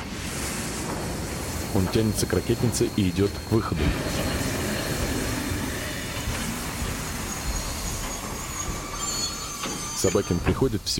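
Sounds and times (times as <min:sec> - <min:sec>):
steam train rail wheels rumbling and grinding while braking to a stop: 0:00.0 - 0:10.9
faint metallic squeals of braking steam train: 0:01.5 - 0:10.8
speech: 0:01.7 - 0:04.4, 0:10.0 - 0:10.9.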